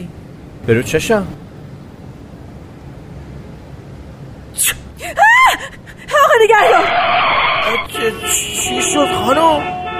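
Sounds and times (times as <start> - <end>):
speech: 0.6 - 1.4, 7.7 - 9.9
woman screaming: 5.0 - 7.8
long harsh screeching noise: 6.6 - 8.8.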